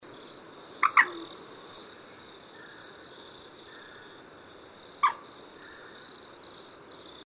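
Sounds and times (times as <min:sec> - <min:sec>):
common moorhen, resident rail-family bird: 0:00.8 - 0:04.2, 0:05.0 - 0:06.2.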